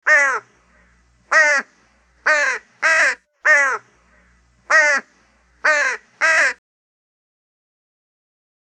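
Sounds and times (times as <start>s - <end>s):
crow giving harsh rasping caws: 0.0s - 0.5s, 1.3s - 1.7s, 2.3s - 3.9s, 4.7s - 6.6s.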